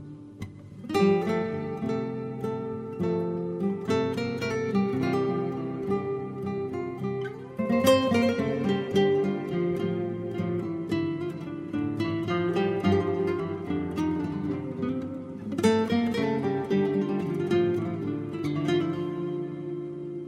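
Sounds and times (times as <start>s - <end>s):
ethnic-style guitar playing: 0.0s - 20.2s.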